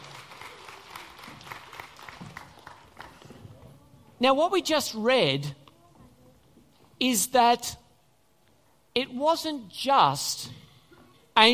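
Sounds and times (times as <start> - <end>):
audience at a Christmas gathering applauding performers: 0.0 - 3.4
speech: 4.2 - 5.6, 7.0 - 7.8, 9.0 - 10.6, 11.4 - 11.5.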